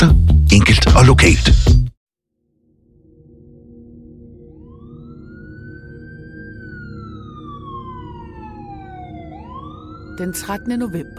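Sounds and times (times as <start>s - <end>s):
speech: 0.0s - 1.8s, 10.2s - 11.1s
emergency vehicle siren wailing: 4.3s - 11.1s.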